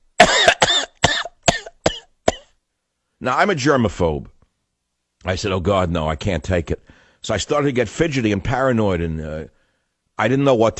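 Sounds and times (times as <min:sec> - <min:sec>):
person imitating a passenger's hacking cough: 0:00.2 - 0:02.5
speech: 0:03.2 - 0:04.4, 0:05.2 - 0:09.6, 0:10.2 - 0:10.7.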